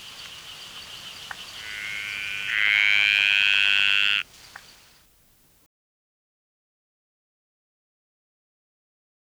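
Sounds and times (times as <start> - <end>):
dainty green tree frog Litoria gracilenta buzzy high-pitched trill: 0.0 - 5.0.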